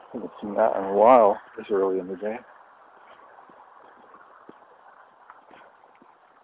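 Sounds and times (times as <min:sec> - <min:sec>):
outdoor noise: 0:00.0 - 0:06.4
speech: 0:00.1 - 0:02.5
horse hoof thuds in a paddock: 0:02.4 - 0:06.4.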